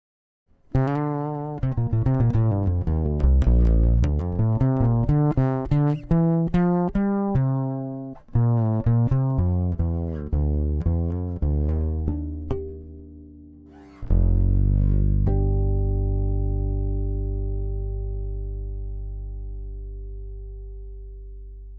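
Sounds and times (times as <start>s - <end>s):
bass through piezo pickup with high cut: 0.6s - 21.7s.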